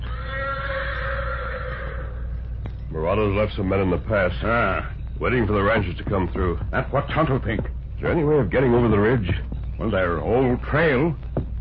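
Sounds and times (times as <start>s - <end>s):
black horse whinnying: 0.0s - 2.6s
low rumbling hum: 0.0s - 11.6s
speech: 3.0s - 11.6s.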